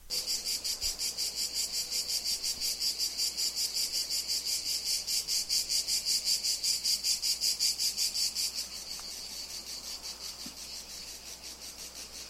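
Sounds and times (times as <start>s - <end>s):
single cicada chirring at a house in Italy: 0.0s - 12.2s.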